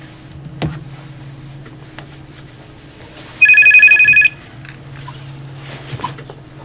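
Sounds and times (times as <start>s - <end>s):
electronic telephone trill of an incoming call in a radio studio: 3.4s - 4.4s.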